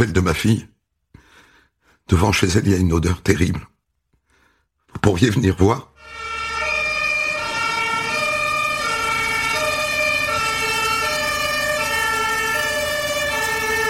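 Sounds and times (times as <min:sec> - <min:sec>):
speech: 0:00.0 - 0:00.7, 0:02.1 - 0:03.7, 0:04.9 - 0:05.9
fire engine two-tone siren: 0:06.0 - 0:13.8.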